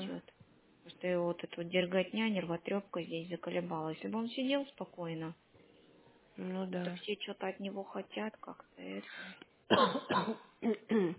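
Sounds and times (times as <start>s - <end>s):
speech: 1.0s - 5.4s, 6.4s - 11.1s
person coughing: 9.7s - 11.1s.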